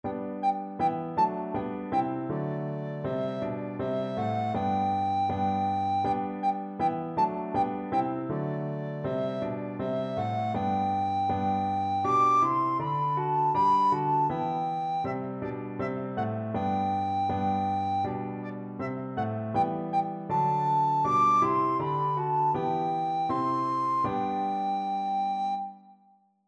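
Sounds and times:
recorder melody: 0.0 - 26.0.

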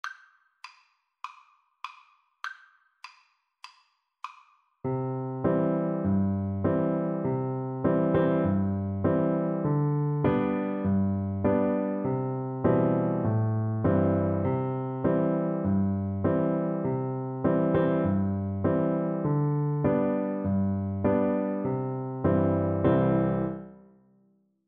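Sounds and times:
piano duet: 4.9 - 23.9.

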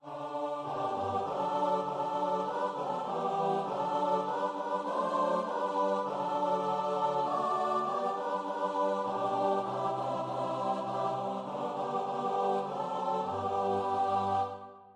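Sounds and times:
choir singing: 0.0 - 14.9.

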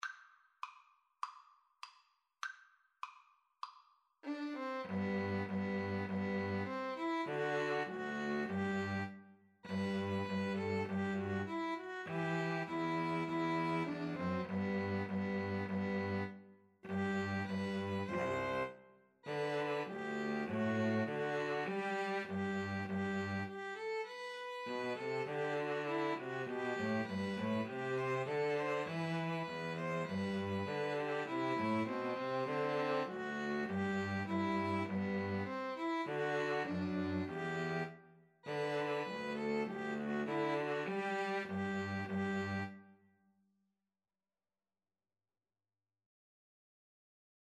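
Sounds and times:
two violins playing karaoke backing: 4.2 - 42.8.

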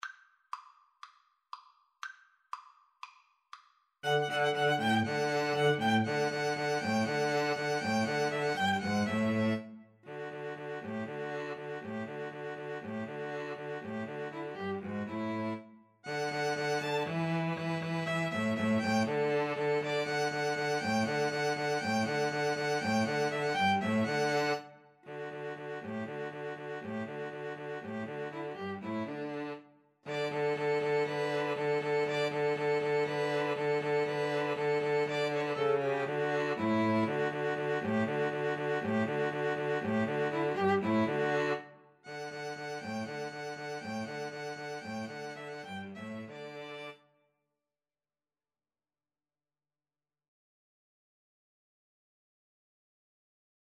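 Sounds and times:
2 violins playing: 4.0 - 47.0.

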